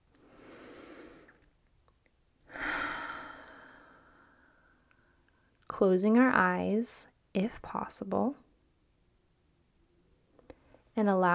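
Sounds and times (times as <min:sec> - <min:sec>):
deep breath inhaled through the nose and exhaled: 0:00.2 - 0:01.5, 0:02.5 - 0:05.2
speech: 0:05.7 - 0:08.4, 0:11.0 - 0:11.3.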